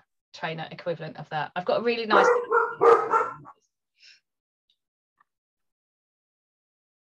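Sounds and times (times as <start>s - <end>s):
speech: 0.4s - 3.0s
several dogs barking in a false alarm: 2.1s - 3.6s.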